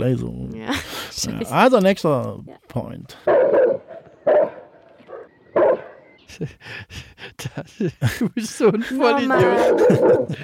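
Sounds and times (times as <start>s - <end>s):
speech: 0.0s - 3.9s, 6.3s - 10.4s
dog barking: 3.2s - 5.9s, 9.4s - 10.4s
dog giving soft whine-like yip: 3.3s - 5.9s
laughter: 6.2s - 10.4s.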